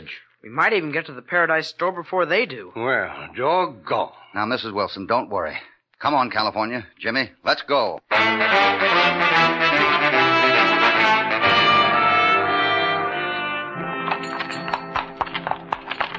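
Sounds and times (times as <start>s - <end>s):
speech: 0.1s - 9.9s
full orchestral score: 8.1s - 15.2s
horses' hooves clopping walking up a stream: 14.1s - 16.1s.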